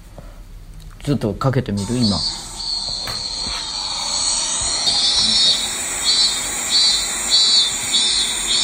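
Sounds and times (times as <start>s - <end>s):
speech: 1.0s - 2.4s
minmin cicada singing: 1.8s - 8.6s.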